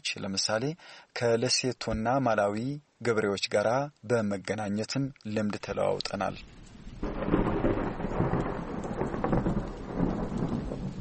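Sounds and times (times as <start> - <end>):
speech: 0.0 - 6.6
steady rain pouring: 5.5 - 10.9
low rumbling thunder: 6.8 - 10.9.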